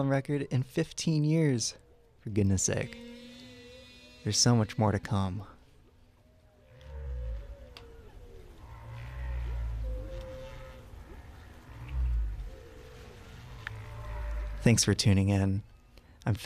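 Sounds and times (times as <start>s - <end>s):
speech: 0.0s - 3.2s, 4.2s - 5.5s, 14.6s - 16.4s
whale calls: 1.8s - 5.5s, 6.1s - 14.9s
deep rumbling low drone: 2.2s - 15.4s.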